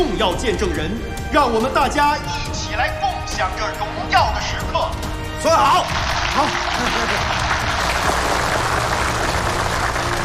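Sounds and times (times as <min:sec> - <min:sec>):
speech: 0:00.0 - 0:08.3
audience applause at a ceremony honoring police station chiefs: 0:05.6 - 0:10.2.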